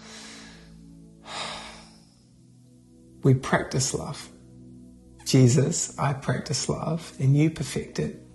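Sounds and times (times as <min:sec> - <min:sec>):
deep breath during a guided prayer: 0:00.0 - 0:02.4
soft steady tonal background: 0:00.0 - 0:08.3
speech: 0:03.2 - 0:04.4, 0:05.3 - 0:08.3.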